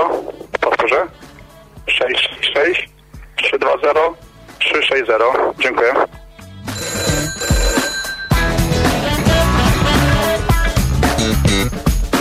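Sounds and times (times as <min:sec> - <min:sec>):
speech: 0:02.0 - 0:02.9, 0:03.7 - 0:06.2
loud busy music: 0:04.0 - 0:12.1
telephone ringing: 0:06.6 - 0:10.4.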